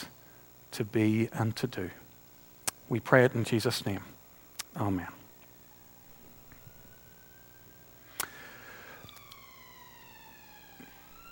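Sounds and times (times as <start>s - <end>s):
low hum: 0.0s - 11.3s
speech: 0.8s - 2.0s, 2.9s - 4.2s, 4.8s - 5.2s
emergency vehicle siren wailing: 5.6s - 11.3s.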